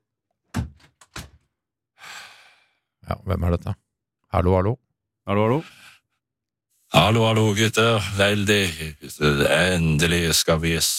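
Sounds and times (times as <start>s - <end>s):
door swinging shut with a solid thump and knocking rattles: 0.5s - 1.4s
speech: 3.1s - 5.8s, 6.9s - 10.9s.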